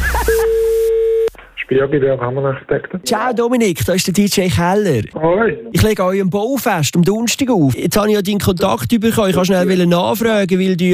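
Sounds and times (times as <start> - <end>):
steady telephone tone: 0.0 - 1.4
speech: 1.7 - 10.9.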